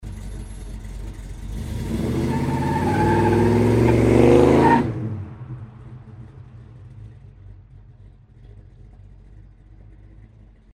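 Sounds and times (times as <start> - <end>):
sharp vehicle start with squeal: 0.0 - 5.2.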